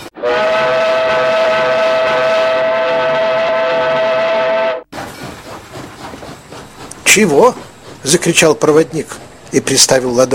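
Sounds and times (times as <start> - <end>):
steam locomotive whistle blast at a station platform: 0.1 - 4.9
speech: 7.1 - 10.3.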